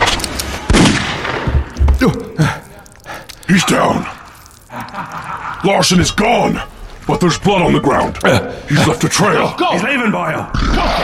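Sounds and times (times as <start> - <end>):
gunfire aimed at an attacking creature in fog: 0.6 - 1.8
speech: 2.0 - 2.6, 3.5 - 4.2, 5.6 - 11.0
laughter: 3.6 - 7.4.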